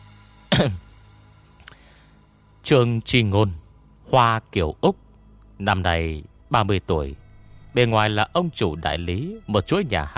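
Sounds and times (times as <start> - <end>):
man clearing his throat: 0.5 - 0.8
speech: 0.6 - 0.9, 2.7 - 5.0, 5.6 - 10.1.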